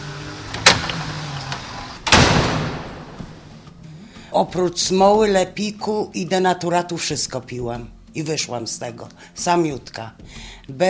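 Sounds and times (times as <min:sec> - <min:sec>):
heavy door latch rattling: 0:00.0 - 0:03.5
door clunking open with heavy latch rattling: 0:00.0 - 0:03.6
low intercom electric buzz: 0:00.0 - 0:03.7
speech: 0:04.3 - 0:10.8.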